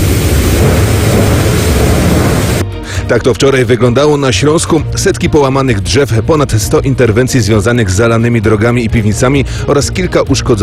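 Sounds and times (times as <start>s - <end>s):
heavy rain in a thunderstorm: 0.0s - 2.6s
strong wind in a thunderstorm: 0.0s - 2.6s
deep low thunder rumbling: 0.0s - 2.8s
speech: 3.1s - 10.6s.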